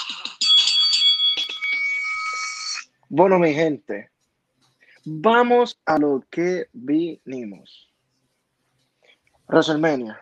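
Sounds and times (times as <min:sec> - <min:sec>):
bell ringing with bright sustained metallic tone: 0:00.1 - 0:02.8
speech: 0:03.1 - 0:04.1, 0:05.0 - 0:07.8, 0:09.5 - 0:10.2.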